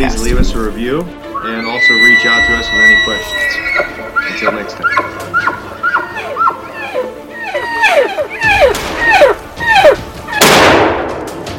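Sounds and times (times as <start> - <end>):
speech: 0.0 - 5.7
short chirping calls: 1.3 - 10.0
hunting rifle gunshot fired at a wolf: 10.4 - 11.3.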